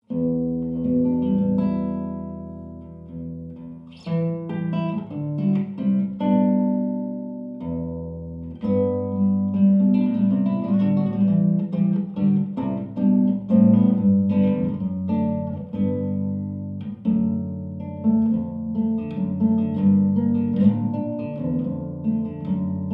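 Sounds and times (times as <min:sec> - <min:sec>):
nylon-string guitar: 0:00.0 - 0:22.9.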